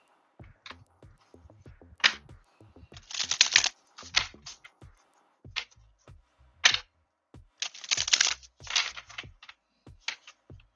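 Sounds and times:
tarot cards being shuffled for a reading: 0:03.0 - 0:04.6, 0:07.6 - 0:10.4.

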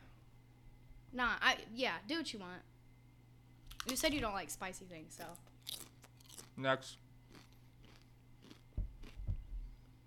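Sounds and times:
speech: 0:01.1 - 0:02.7, 0:03.8 - 0:05.9, 0:06.6 - 0:07.0
chewing food with moist crunches: 0:05.2 - 0:10.0.

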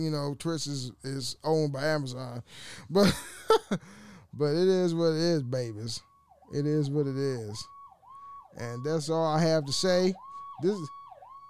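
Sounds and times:
speech: 0:00.0 - 0:07.8, 0:08.6 - 0:11.0
laughter: 0:03.0 - 0:03.8
ambulance siren blaring: 0:04.9 - 0:11.4.

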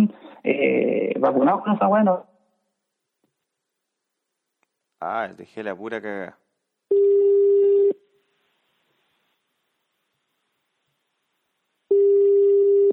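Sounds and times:
speech: 0:00.0 - 0:02.3, 0:05.0 - 0:07.0
telephone ringback tone while a caller waits for an answer: 0:06.9 - 0:08.0, 0:11.9 - 0:12.9.

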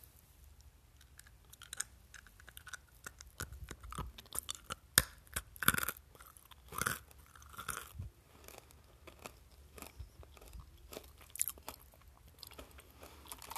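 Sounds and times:
chewing crunchy peanuts taken from a jar: 0:01.0 - 0:13.5.

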